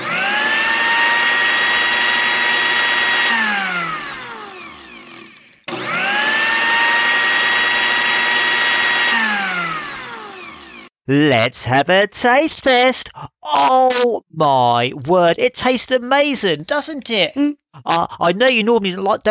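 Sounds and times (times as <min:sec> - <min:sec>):
kitchen blender blending carrots and cashews: 0:00.0 - 0:11.0
speech: 0:11.1 - 0:13.0, 0:13.6 - 0:19.3.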